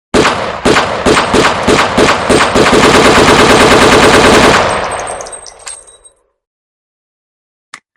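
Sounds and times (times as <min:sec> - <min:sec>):
loud AK-47 gunfire: 0:00.1 - 0:05.2.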